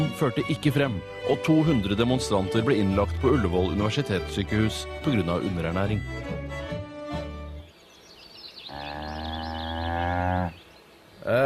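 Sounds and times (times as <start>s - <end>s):
speech: 0.0s - 6.6s, 11.2s - 11.4s
cow mooing while being milked: 8.7s - 10.6s.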